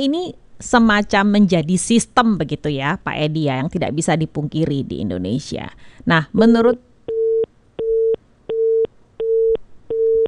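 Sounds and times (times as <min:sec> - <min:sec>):
speech: 0:00.0 - 0:06.9
telephone busy tone beeps after a dropped call: 0:07.1 - 0:10.2.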